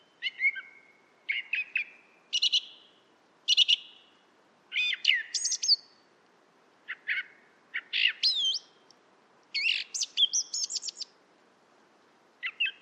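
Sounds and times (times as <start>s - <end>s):
song thrush singing loud varied phrases: 0.0s - 6.0s, 6.9s - 8.9s, 9.5s - 11.1s, 12.4s - 12.8s.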